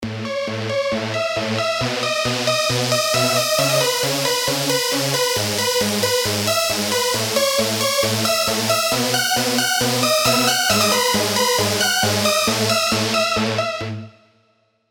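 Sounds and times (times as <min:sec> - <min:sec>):
gospel trance music: 0:00.0 - 0:14.2.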